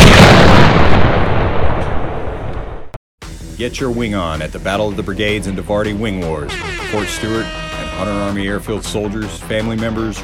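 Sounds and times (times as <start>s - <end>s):
tank cannon firing: 0.0s - 2.3s
speech: 3.6s - 10.2s.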